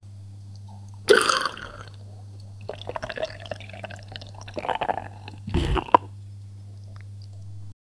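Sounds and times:
person drinking: 1.1s - 2.0s, 2.6s - 6.1s.

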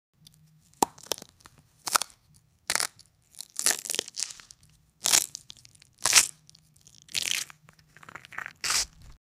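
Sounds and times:
ASMR fruit sounds: 2.7s - 9.2s.

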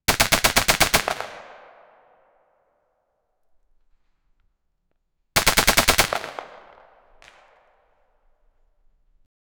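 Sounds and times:
sharp AK-47 rifle shots: 0.1s - 2.4s, 5.4s - 8.1s.

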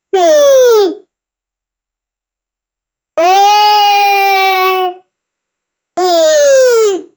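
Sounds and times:
cute cartoon yawn: 0.1s - 1.1s, 3.2s - 5.0s, 6.0s - 7.1s.

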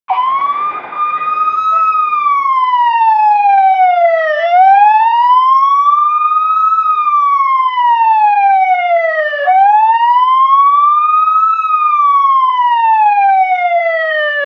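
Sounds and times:
police car siren: 0.1s - 14.4s.

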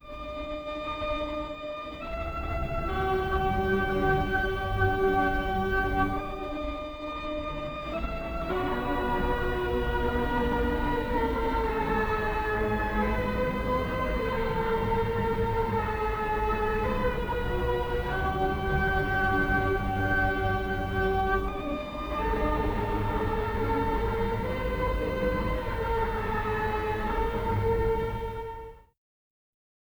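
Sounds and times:
alarming background music: 0.1s - 28.8s.

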